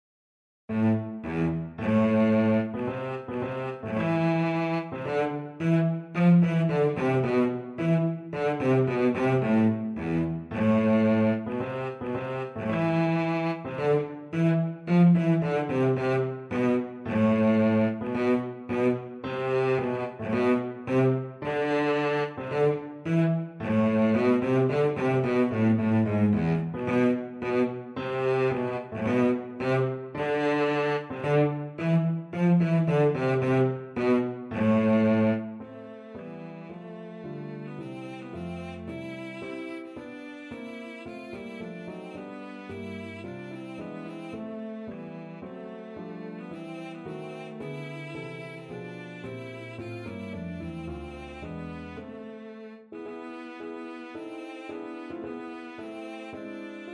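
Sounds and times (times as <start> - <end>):
cello playing a prelude: 0.7 - 56.9.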